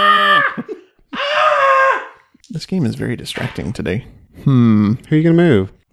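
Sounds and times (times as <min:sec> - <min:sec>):
person's voice imitating a screaming goat: 0:00.0 - 0:02.2
speech: 0:02.6 - 0:05.9.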